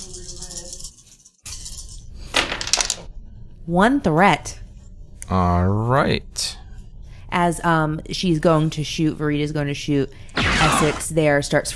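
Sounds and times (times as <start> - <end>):
four dice rolling across a surface: 2.4 - 3.0
speech: 3.7 - 4.6, 5.3 - 6.6, 7.4 - 11.7.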